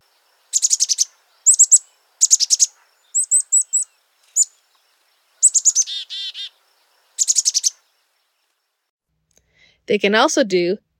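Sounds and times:
chickadee calling the chicka part of its call: 0.0s - 8.0s
speech: 9.9s - 10.9s.

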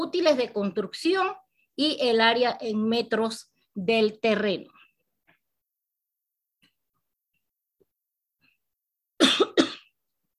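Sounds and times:
speech: 0.0s - 4.8s
harsh coughing fit: 9.2s - 10.0s.

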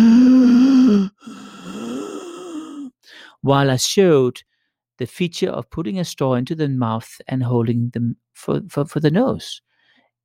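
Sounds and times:
voice imitating heavy labored breathing: 0.0s - 3.4s
speech: 3.4s - 9.7s.

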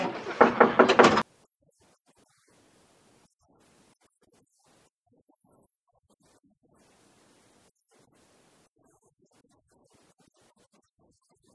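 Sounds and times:
knocking on a door: 0.0s - 1.2s.

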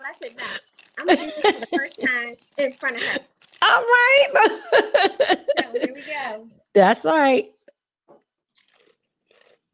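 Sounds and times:
speech: 0.1s - 7.6s
laughter: 0.4s - 2.1s, 4.3s - 6.1s
crisp snack from a bag being bitten and chewed: 8.5s - 9.7s.

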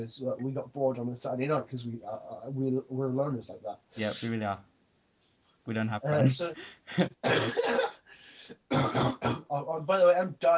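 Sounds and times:
speech: 0.0s - 4.7s, 5.6s - 7.9s, 8.5s - 10.5s
harsh coughing: 7.0s - 9.5s.

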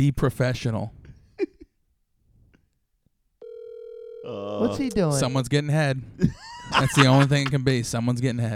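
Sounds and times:
speech: 0.0s - 1.0s, 4.3s - 8.5s
telephone ringback tone on the line: 3.4s - 4.3s
laughter: 6.2s - 7.6s.

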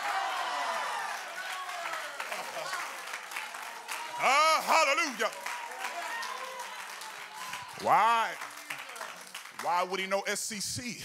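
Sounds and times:
crowd shouting: 0.0s - 3.0s, 3.6s - 8.3s
crowd clapping: 0.0s - 10.4s
speech: 4.2s - 5.5s, 7.8s - 8.5s, 9.6s - 11.0s.

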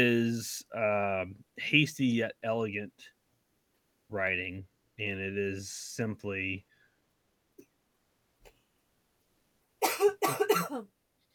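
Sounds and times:
speech: 0.0s - 3.2s, 4.1s - 6.7s, 10.3s - 11.0s
person coughing: 9.8s - 10.8s.

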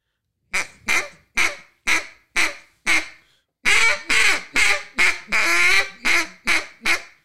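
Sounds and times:
duck call blown quietly in a Cajun squeal: 0.5s - 7.2s.

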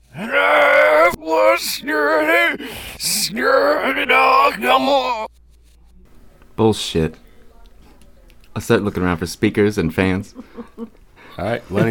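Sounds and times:
person imitating anguished ghostly shouting and screaming: 0.0s - 5.3s
speech: 1.6s - 5.3s, 6.6s - 7.2s, 8.6s - 11.8s
sharp gasping breaths: 2.6s - 3.1s.

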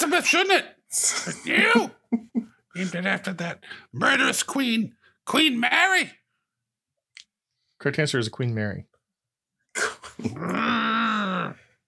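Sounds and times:
speech: 0.0s - 6.2s, 7.8s - 8.9s, 9.8s - 11.6s
person voicing a creature-like growl and rasping snarl: 9.8s - 11.7s.

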